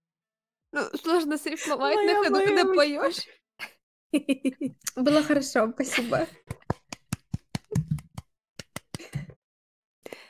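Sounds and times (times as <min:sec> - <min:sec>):
speech: 0:00.7 - 0:06.5
laughter: 0:01.6 - 0:03.2, 0:04.2 - 0:06.8
hands slapping buttocks: 0:06.4 - 0:09.3.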